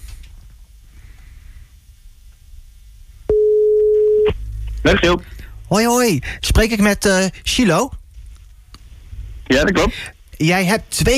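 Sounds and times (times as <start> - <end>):
low rumble: 0.0 - 11.1
steady single-pitched outgoing phone call ringing tone: 3.3 - 4.3
speech: 4.8 - 8.0, 9.5 - 11.1.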